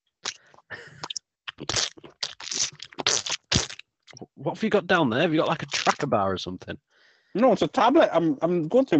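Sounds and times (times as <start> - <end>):
wet chewing and crunching of a crumbly scone: 1.5 - 4.2
speech: 4.4 - 8.9.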